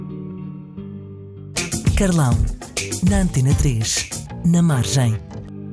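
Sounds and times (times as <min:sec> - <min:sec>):
sung cover version of a song with layered harmonies and heavy reverb: 0:01.6 - 0:05.5
speech: 0:02.0 - 0:05.3.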